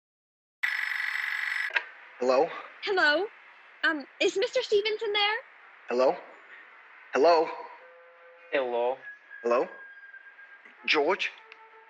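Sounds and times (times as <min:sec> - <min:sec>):
telephone ringing heard over the line: 0:00.6 - 0:01.8
speech: 0:02.2 - 0:06.3, 0:07.1 - 0:07.7, 0:08.5 - 0:09.8, 0:10.8 - 0:11.4.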